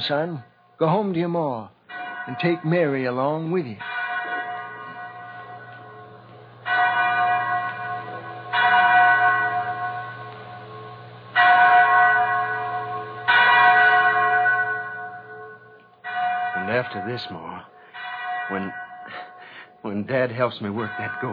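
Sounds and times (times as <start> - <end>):
speech: 0.0 - 3.9, 17.0 - 17.7, 18.5 - 19.2, 19.8 - 21.3
chapel bell tolling: 1.9 - 21.3.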